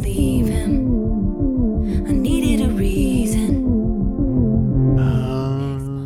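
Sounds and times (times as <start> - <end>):
throbbing pulsing drum beat in a song: 0.0 - 4.7
wavering siren-like tone in a song: 0.6 - 5.7.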